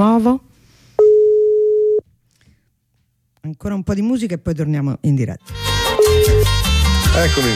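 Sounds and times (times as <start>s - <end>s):
speech: 0.0s - 0.5s, 3.5s - 5.6s, 7.2s - 7.5s
telephone busy tone after a dropped phone line: 1.0s - 2.0s, 6.0s - 6.5s.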